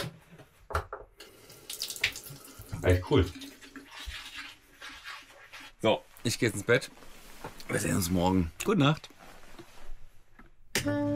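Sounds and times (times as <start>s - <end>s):
water running from a tap into a large sink on a boat: 1.2s - 4.6s
speech: 2.8s - 3.4s, 5.8s - 7.1s, 7.7s - 9.1s, 10.8s - 11.1s.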